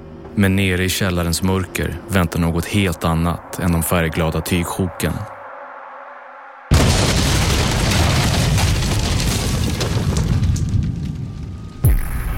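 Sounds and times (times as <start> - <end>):
speech: 0.4 - 5.4
bomb explosion with roaring rumble: 6.7 - 12.3
crackling debris: 6.7 - 12.3.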